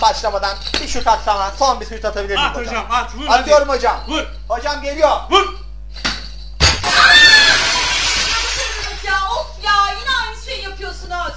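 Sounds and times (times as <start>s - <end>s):
speech: 0.0s - 6.1s
glass shattering from a ball shot: 6.0s - 9.0s.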